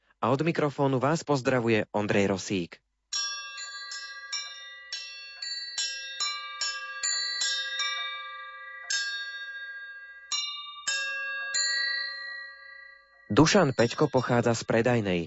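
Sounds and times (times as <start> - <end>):
speech: 0.2 - 2.8, 13.3 - 15.2
small handmade bells ringing: 3.1 - 15.2.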